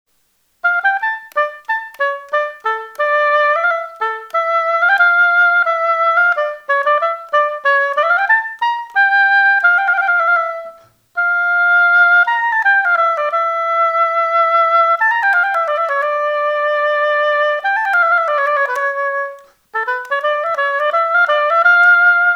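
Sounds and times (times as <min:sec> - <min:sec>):
oboe: 0:00.6 - 0:22.3.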